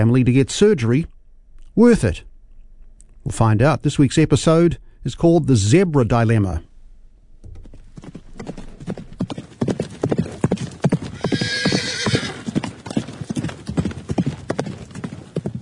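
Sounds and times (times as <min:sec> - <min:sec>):
speech: 0:00.0 - 0:01.2, 0:01.8 - 0:02.3, 0:03.2 - 0:06.7, 0:08.0 - 0:08.7
horse hooves clip-clopping on a hard surface: 0:07.4 - 0:15.6
high horse whinny: 0:11.1 - 0:12.5.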